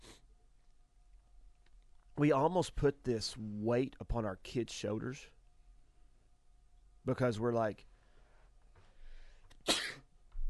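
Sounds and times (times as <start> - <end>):
speech: 2.2 - 5.4, 7.0 - 7.9
man sneezing: 9.6 - 10.1.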